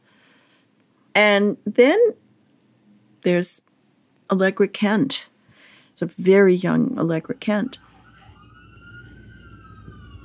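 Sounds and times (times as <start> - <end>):
speech: 1.2 - 2.2, 3.2 - 3.7, 4.3 - 5.3, 6.0 - 7.9
emergency siren wailing: 7.0 - 10.2
city traffic rumble: 7.2 - 10.2.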